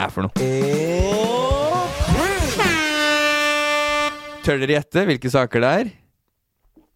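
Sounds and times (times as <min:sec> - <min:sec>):
speech: 0:00.0 - 0:01.3, 0:04.5 - 0:06.0
brief warbling pitch-bending jingle lead-in: 0:00.4 - 0:04.7
loud sustained air horn blast in a podcast jingle: 0:01.5 - 0:04.8.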